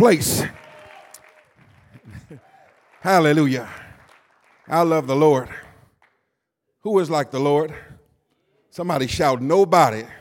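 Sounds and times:
speech: 0.0 - 0.6, 3.0 - 3.8, 4.7 - 5.6, 6.8 - 7.9, 8.8 - 10.2
audience at a worship service clapping: 0.0 - 6.2.

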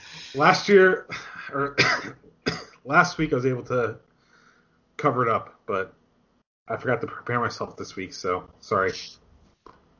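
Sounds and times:
speech: 0.3 - 4.1, 5.0 - 6.0, 6.7 - 9.8
person coughing raspily: 1.0 - 2.8
person clearing throat: 1.1 - 2.8.

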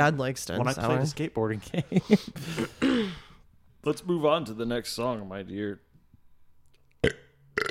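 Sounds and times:
speech: 0.0 - 3.2, 3.8 - 5.9, 7.0 - 7.7
burps: 7.0 - 7.7.

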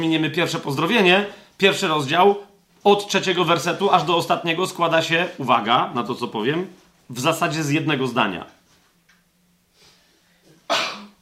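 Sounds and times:
speech: 0.0 - 8.6
sneeze: 10.6 - 11.1.

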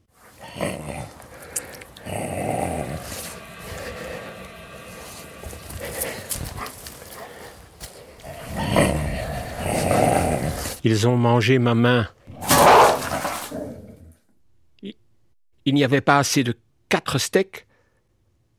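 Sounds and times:
dogs growling and snarling over steaks: 0.1 - 10.8, 12.3 - 14.2
speech: 10.8 - 12.2, 15.8 - 17.7.

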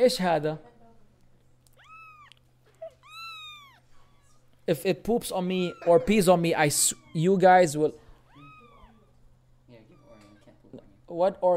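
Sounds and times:
speech: 0.0 - 0.7, 4.7 - 8.0, 11.1 - 11.5
soft steady hum: 0.0 - 11.5
cat meowing: 1.7 - 4.5, 5.3 - 10.6.

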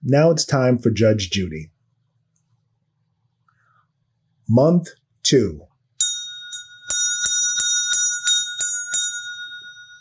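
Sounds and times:
speech: 0.0 - 1.7, 4.5 - 5.7
small meditation bell ringing: 6.0 - 9.9.

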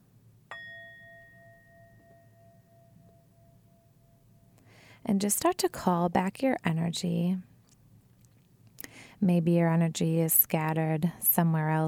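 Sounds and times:
low hum: 0.0 - 11.8
singing bowl struck and ringing: 0.5 - 4.6
speech: 5.0 - 7.5, 9.2 - 11.8.

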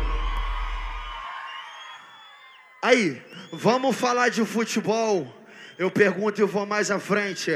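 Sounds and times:
large crowd at a packed dance party shouting and cheering: 0.0 - 7.5
speech: 2.9 - 7.5.

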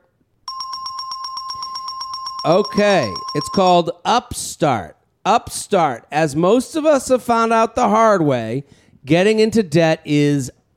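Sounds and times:
bell ringing: 0.5 - 3.8
speech: 2.4 - 10.6.

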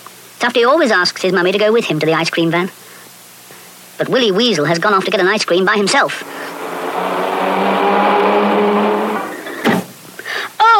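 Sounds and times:
speech: 0.4 - 2.8, 4.0 - 6.4
car engine roaring as the vehicle speeds by: 5.8 - 9.9.

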